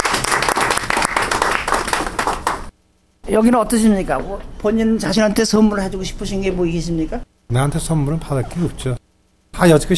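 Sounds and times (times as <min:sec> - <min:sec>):
applause from a small group: 0:00.0 - 0:02.7
speech: 0:03.3 - 0:09.0, 0:09.6 - 0:09.9.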